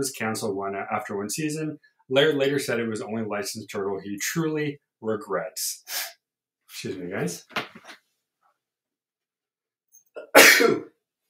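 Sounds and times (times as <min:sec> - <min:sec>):
speech: 0:00.0 - 0:08.0
person sneezing: 0:10.2 - 0:10.9.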